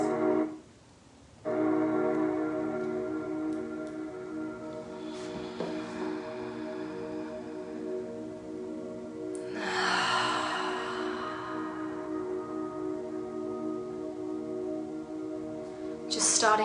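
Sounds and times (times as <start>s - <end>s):
sustained tonal drone: 0.0s - 0.6s, 1.4s - 16.6s
slow deep belly breathing: 4.8s - 13.6s.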